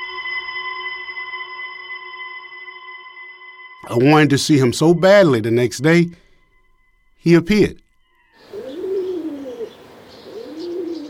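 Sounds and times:
speech: 0:03.9 - 0:06.2, 0:07.2 - 0:07.8
pigeons cooing: 0:08.4 - 0:11.0.

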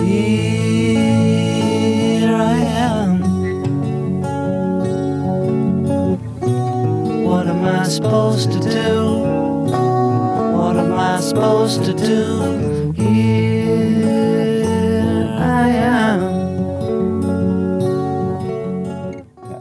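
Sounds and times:
man singing a slow plaintive melody: 0:00.0 - 0:03.7, 0:07.0 - 0:16.6
strummed acoustic guitar: 0:00.0 - 0:19.5.

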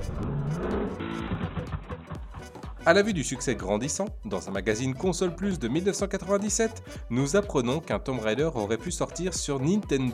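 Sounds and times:
snowmobile engine revving: 0:00.0 - 0:02.1
speech: 0:02.8 - 0:10.1.

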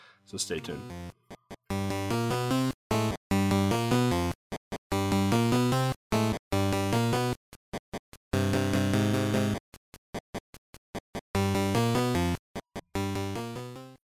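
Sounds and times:
speech: 0:00.3 - 0:01.1
chiptune music from a Game Boy soundtrack with square-wave melodies: 0:00.4 - 0:07.4, 0:08.3 - 0:09.6, 0:11.4 - 0:14.0.

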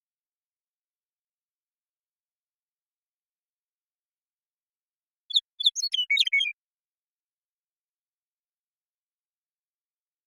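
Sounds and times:
Western meadowlark song: 0:05.2 - 0:06.6.

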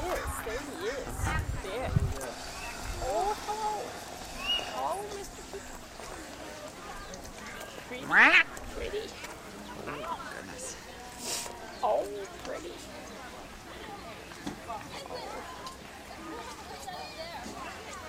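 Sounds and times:
faint voices: 0:00.0 - 0:18.0
outdoor murmur: 0:00.0 - 0:18.0
peacock calling: 0:02.4 - 0:05.2.

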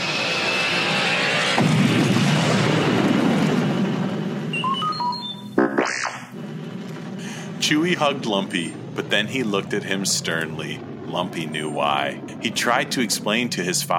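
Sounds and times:
spaceship rockets firing as the craft lifts off out of a swamp: 0:00.0 - 0:04.5, 0:05.5 - 0:13.9
speech: 0:07.9 - 0:13.9.

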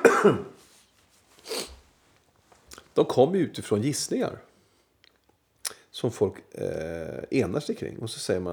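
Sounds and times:
person coughing: 0:00.0 - 0:00.6
speech: 0:00.2 - 0:00.5, 0:03.0 - 0:04.5, 0:06.0 - 0:08.5.

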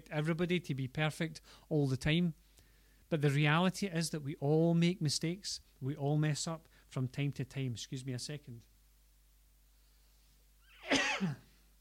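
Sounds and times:
speech: 0:00.1 - 0:02.4, 0:03.1 - 0:08.7, 0:11.2 - 0:11.5
person coughing into an elbow: 0:10.8 - 0:11.5.

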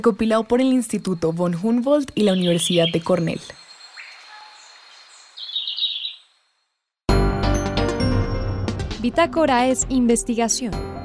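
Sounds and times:
speech: 0:00.0 - 0:03.6, 0:09.0 - 0:10.9
verderón castaño greenlet singing outdoors: 0:02.0 - 0:06.5
loud music: 0:07.2 - 0:09.9.

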